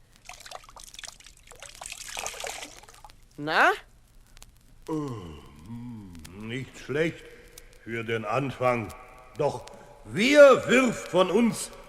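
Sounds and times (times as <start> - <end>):
water trickling and dripping in small splashes: 0.1 - 3.2
speech: 3.4 - 3.9, 4.9 - 5.8, 6.5 - 7.3, 7.9 - 11.8.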